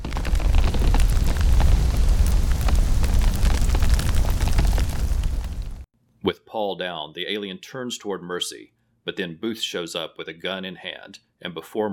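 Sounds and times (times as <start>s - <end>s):
explosion in a basement: 0.0s - 5.8s
crackles and pops of fire: 0.0s - 5.9s
speech: 6.5s - 11.9s.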